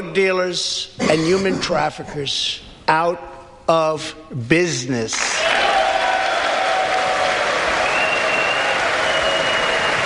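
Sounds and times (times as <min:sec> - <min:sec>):
speech: 0:00.2 - 0:05.7
crowd cheering: 0:05.3 - 0:10.0
large audience applauding: 0:05.3 - 0:10.0
whistles from audience: 0:07.8 - 0:10.0.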